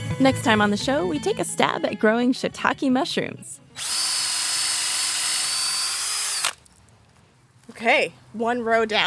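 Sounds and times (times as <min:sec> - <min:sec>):
speech: 0:00.2 - 0:04.0, 0:07.8 - 0:09.0
power drill boring holes in a log: 0:03.8 - 0:06.6.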